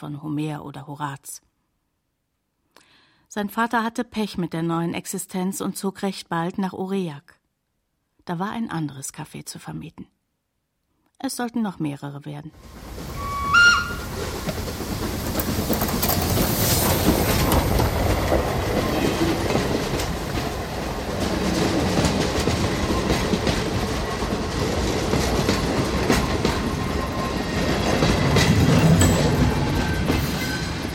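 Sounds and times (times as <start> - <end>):
speech: 0.0 - 1.5, 3.3 - 7.4, 8.2 - 10.2, 11.2 - 13.1
four-cylinder steam locomotive built in 1887 running along the line: 12.6 - 30.9
rhythmic clatter of locomotive wheels: 12.9 - 30.9
short steam locomotive whistle: 13.0 - 14.2.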